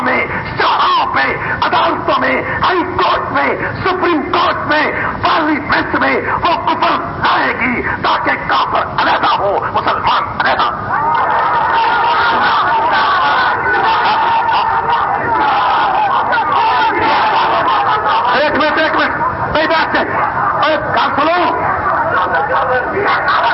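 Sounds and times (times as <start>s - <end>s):
crowd shouting: 0.0s - 23.5s
laughter: 0.0s - 23.5s
speech: 1.9s - 11.1s
large crowd chanting religious slogans: 6.3s - 23.5s.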